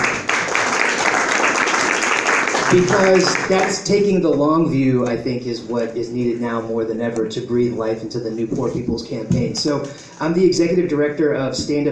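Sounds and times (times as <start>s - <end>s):
audience clapping in a round of applause: 0.0s - 3.9s
speech: 2.7s - 11.9s.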